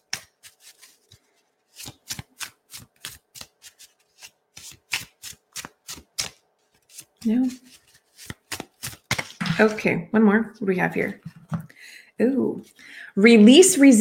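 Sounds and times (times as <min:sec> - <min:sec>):
deck of oracle cards being shuffled: 0:00.0 - 0:09.8
speech: 0:07.2 - 0:07.7, 0:09.6 - 0:11.3, 0:12.2 - 0:13.9.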